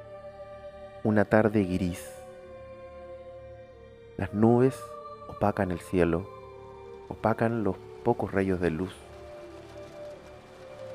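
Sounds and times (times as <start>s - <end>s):
speech: 1.0s - 2.2s, 4.2s - 6.4s, 7.1s - 9.1s
heavy rain: 6.4s - 10.9s.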